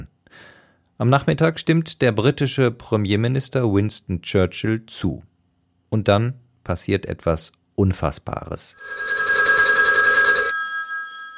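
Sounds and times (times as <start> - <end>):
speech: 0.4 - 5.3, 5.9 - 9.2
telephone bell ringing for a call: 8.8 - 11.3.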